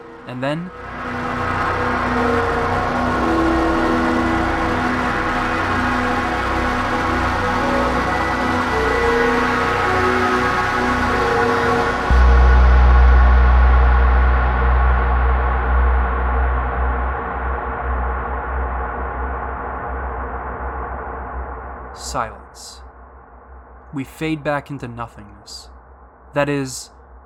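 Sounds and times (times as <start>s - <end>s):
dense roaring wall of distorted music: 0.0s - 19.7s
speech: 0.2s - 1.2s, 2.1s - 2.6s, 24.0s - 25.6s, 26.3s - 27.0s.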